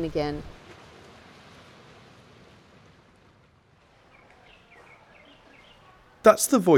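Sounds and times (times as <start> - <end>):
speech: 0.0 - 0.6, 6.2 - 6.7
boat engines rumbling near a harbour entrance: 0.0 - 6.7
water churned by boats near a harbour entrance: 0.0 - 6.7
faint bird chirps: 4.1 - 6.0.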